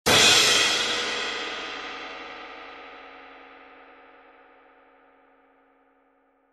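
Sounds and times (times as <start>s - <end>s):
20-inch crash cymbal: 0.1s - 3.4s.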